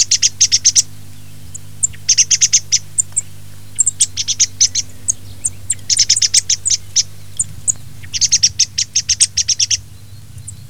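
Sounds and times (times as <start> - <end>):
thrush uttering bright high clicking notes: 0.0 - 9.2
faint low drone: 0.0 - 10.6.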